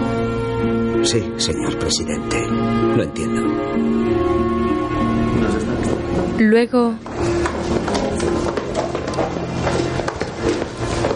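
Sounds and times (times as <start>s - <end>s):
speech: 1.0s - 8.6s
footsteps going down a flight of stairs: 7.0s - 11.1s.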